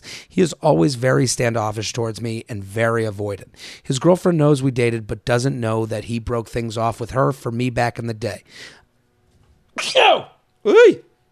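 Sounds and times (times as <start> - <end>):
speech: 0.4 - 8.8, 9.8 - 11.1
sneeze: 9.8 - 10.9.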